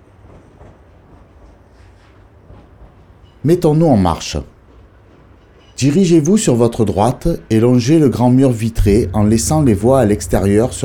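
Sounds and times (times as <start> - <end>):
ambience of a train station main hall near the tracks: 0.0 - 10.8
speech: 3.4 - 4.5, 5.8 - 10.8.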